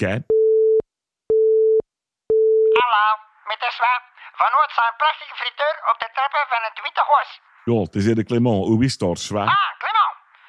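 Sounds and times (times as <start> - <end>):
speech: 0.0 - 0.3, 3.5 - 10.2
telephone line tone beeps before answering: 0.3 - 2.8.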